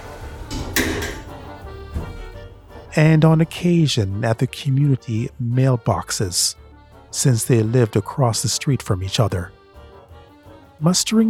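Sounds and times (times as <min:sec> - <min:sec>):
elevator doors sliding shut: 0:00.0 - 0:02.4
speech: 0:03.0 - 0:09.6, 0:10.8 - 0:11.2.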